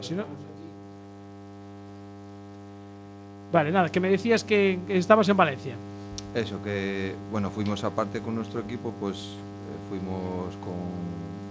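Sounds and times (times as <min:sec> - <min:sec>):
speech: 0:00.0 - 0:00.6, 0:03.5 - 0:11.2
faint steady electrical hiss: 0:00.0 - 0:11.4
low buzzing hum: 0:00.0 - 0:11.4.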